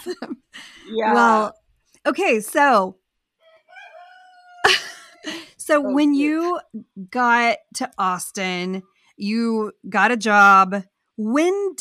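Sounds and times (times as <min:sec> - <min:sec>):
speech: 0:00.0 - 0:03.0, 0:05.7 - 0:11.8
rooster crowing: 0:03.4 - 0:04.8.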